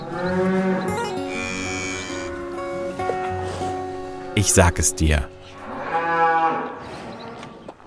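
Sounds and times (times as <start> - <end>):
cow mooing: 0.0 - 2.8, 5.5 - 7.6
speech: 4.4 - 5.4.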